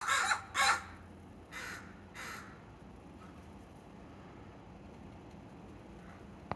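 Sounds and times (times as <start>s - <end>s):
crows cawing at each other in a tree: 0.0s - 2.6s.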